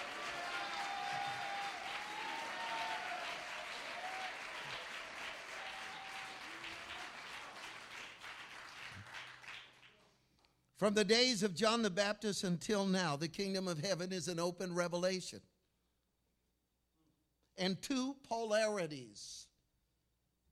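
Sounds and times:
large audience clapping: 0:00.0 - 0:10.1
speech: 0:10.8 - 0:15.5, 0:17.6 - 0:19.5.

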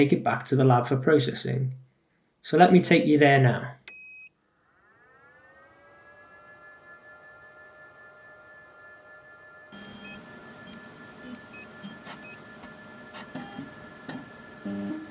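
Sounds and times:
speech: 0:00.0 - 0:01.8, 0:02.4 - 0:03.8
pump motor drawing river water through fine filter: 0:04.7 - 0:15.0.

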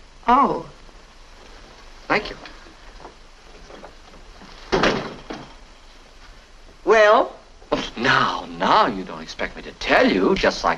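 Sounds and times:
speech: 0:00.3 - 0:00.8, 0:02.1 - 0:02.6, 0:06.9 - 0:07.4, 0:08.0 - 0:10.7
door swinging shut with a solid thud: 0:04.6 - 0:05.6.

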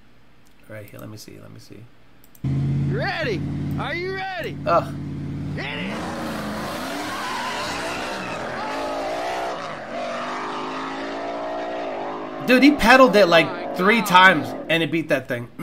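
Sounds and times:
speech: 0:00.7 - 0:06.3, 0:12.5 - 0:15.6
race car engines revving during a final race: 0:02.4 - 0:14.8
race car tires squealing during a final race: 0:02.5 - 0:14.7.

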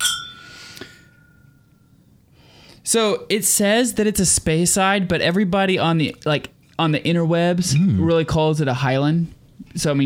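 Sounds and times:
drinking glasses clinking in a toast: 0:00.0 - 0:01.5
speech: 0:02.9 - 0:10.0.

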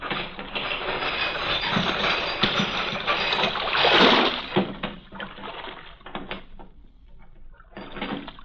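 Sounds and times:
heavy harbor chain rattling and ratcheting as it is lowered: 0:00.0 - 0:04.8.

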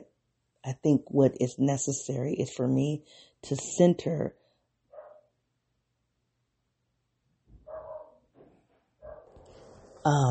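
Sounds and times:
speech: 0:00.6 - 0:04.4, 0:10.0 - 0:10.3
dogs barking: 0:04.9 - 0:05.3, 0:07.7 - 0:08.2, 0:09.0 - 0:09.4.

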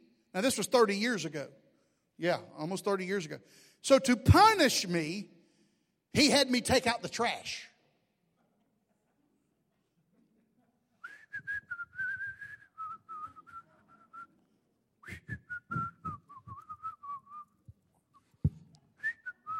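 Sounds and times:
speech: 0:00.4 - 0:01.6, 0:02.2 - 0:05.3, 0:06.1 - 0:07.7
person whistling a wandering tune while taking out the trash: 0:11.0 - 0:14.4, 0:15.0 - 0:19.5.

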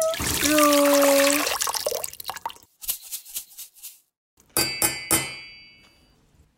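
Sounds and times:
water poured into a cooking pot while making soup: 0:00.0 - 0:02.7.

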